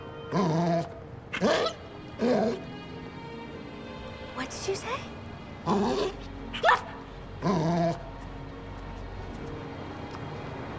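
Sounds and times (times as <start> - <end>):
speech: 0.3 - 2.6, 4.5 - 6.2
dog growling and barking: 0.3 - 2.7, 5.7 - 8.1.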